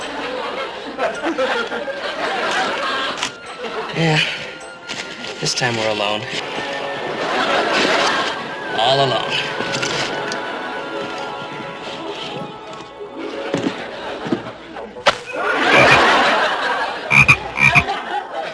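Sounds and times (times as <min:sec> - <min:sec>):
laughter: 0:00.0 - 0:04.7, 0:06.8 - 0:18.5
speech: 0:01.2 - 0:02.9, 0:03.9 - 0:04.4, 0:05.4 - 0:06.7, 0:08.8 - 0:09.8
frogs croaking in a chorus: 0:17.1 - 0:17.9.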